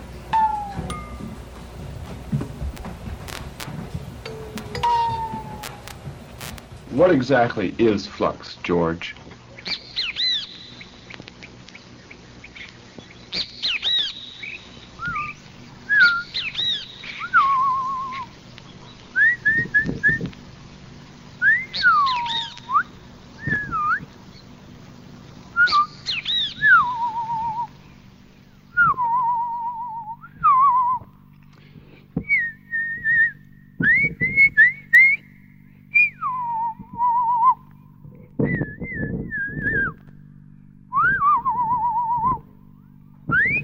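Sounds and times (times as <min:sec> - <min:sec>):
low steady hum: 0:00.0 - 0:43.6
person whistling in imitation of birdsong: 0:00.4 - 0:01.0, 0:04.4 - 0:05.8, 0:13.4 - 0:18.4, 0:19.1 - 0:20.3, 0:21.4 - 0:24.2, 0:25.5 - 0:27.9, 0:28.7 - 0:31.1, 0:32.2 - 0:37.7, 0:38.4 - 0:40.0, 0:40.9 - 0:42.5, 0:43.3 - 0:43.6
speech: 0:07.0 - 0:09.2.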